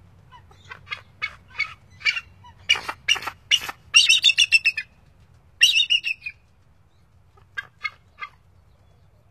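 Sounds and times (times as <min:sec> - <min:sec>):
bald eagle calling: 0:00.3 - 0:05.0, 0:05.6 - 0:06.4.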